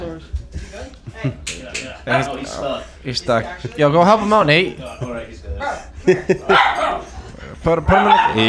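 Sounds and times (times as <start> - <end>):
laughter: 0.0 - 8.4
speech: 1.2 - 8.4
dog barking sharp and fairly high-pitched: 6.4 - 8.4.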